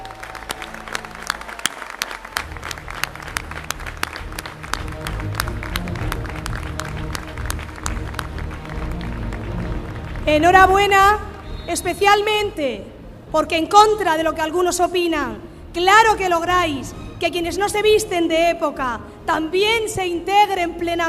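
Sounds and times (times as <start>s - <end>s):
audience applause: 0.0s - 11.5s
speech: 10.3s - 21.0s.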